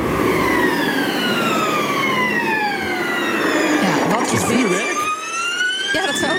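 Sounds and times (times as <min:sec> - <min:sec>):
Formula 1 racing car engines screaming past: 0:00.0 - 0:06.3.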